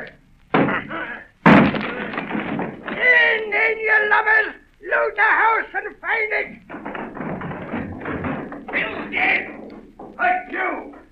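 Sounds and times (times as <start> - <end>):
door being battered down with heavy blows: 0.5 - 3.5, 6.5 - 11.1
speech: 4.0 - 6.8, 10.2 - 10.9.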